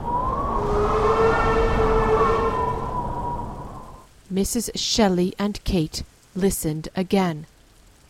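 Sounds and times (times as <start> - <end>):
low rumbling background: 0.0 - 4.1
locomotive train whistle blast: 0.7 - 3.2
speech: 4.4 - 7.5.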